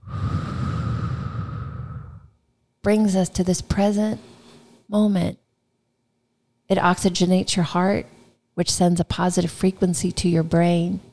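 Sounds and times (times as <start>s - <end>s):
deep airy breath: 0.0s - 2.4s
speech: 2.8s - 4.3s, 4.9s - 5.4s, 6.7s - 11.1s.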